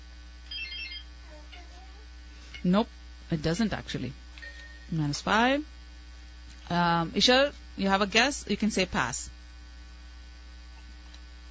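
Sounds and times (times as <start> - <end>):
steady hum: 0.0 - 11.5
quiz buzzer buzzing in during a quiz game: 0.5 - 1.2
speech: 2.6 - 4.2, 4.9 - 5.7, 6.7 - 9.4.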